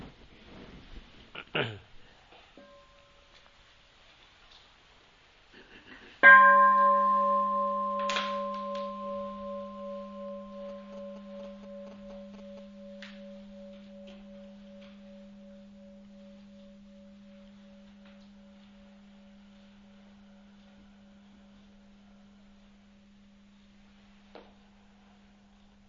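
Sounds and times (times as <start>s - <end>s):
faint rustling: 0.0s - 5.1s, 6.8s - 25.8s
single deep bell struck and ringing: 2.6s - 3.4s, 6.2s - 25.2s.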